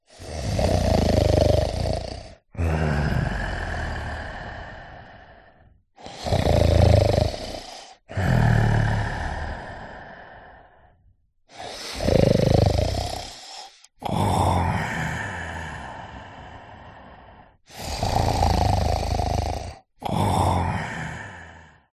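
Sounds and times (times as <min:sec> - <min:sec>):
elderly man snoring: 0:00.1 - 0:21.9.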